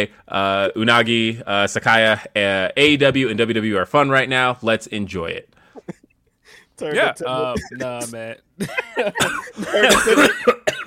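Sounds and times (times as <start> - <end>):
speech: 0.0 - 5.9, 6.8 - 10.8
laughter: 5.8 - 6.2, 6.8 - 10.7
person coughing after inhaling a speck of dust: 7.0 - 8.2, 9.1 - 10.8.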